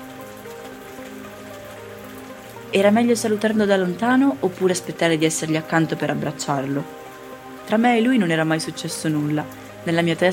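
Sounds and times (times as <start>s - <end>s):
steady rain pattering on a hard surface: 0.0s - 10.3s
speech: 2.7s - 7.0s, 7.7s - 10.3s.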